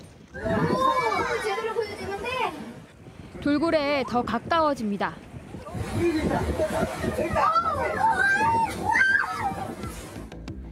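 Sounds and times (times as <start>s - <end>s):
crowd of tourists cheering and exclaiming on a dolphin-watching tour boat: 0.3s - 1.8s, 6.8s - 10.1s
speech: 3.4s - 5.3s, 6.0s - 9.1s.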